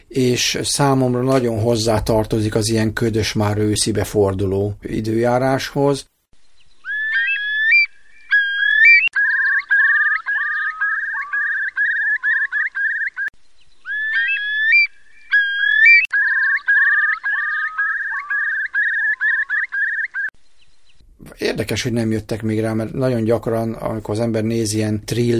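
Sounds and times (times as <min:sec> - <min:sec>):
speech: 0:00.1 - 0:06.1, 0:21.8 - 0:25.3
Eurasian curlew Numenius arquata calling: 0:06.8 - 0:20.3.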